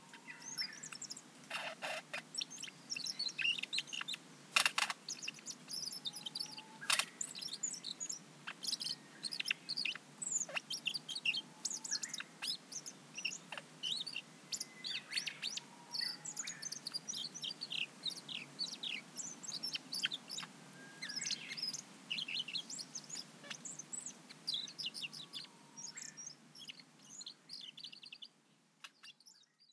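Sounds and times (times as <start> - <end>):
Siberian blue robin song of high thin chirps and quick trills in Nagasaki, Japan: 0.0 - 29.7
steady low background hiss: 0.0 - 29.7.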